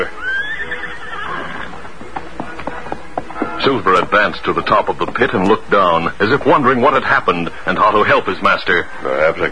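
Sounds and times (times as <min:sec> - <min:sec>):
horse neighing: 0:00.0 - 0:01.8
horse hoof knocks: 0:01.3 - 0:07.0
speech: 0:03.6 - 0:09.5.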